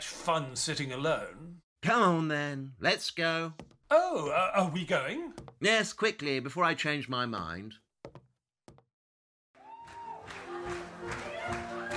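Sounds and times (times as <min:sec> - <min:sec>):
speech: 0:00.2 - 0:07.8
knocks: 0:05.3 - 0:05.6, 0:08.0 - 0:08.9
rowdy saloon crowd laughing and cheering: 0:09.6 - 0:11.9.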